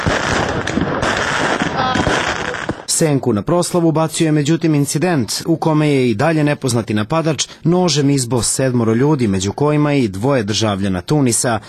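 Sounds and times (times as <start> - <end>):
firecrackers exploding on a cold dry New Year's night: 0.0 - 3.0
speech: 3.0 - 11.6.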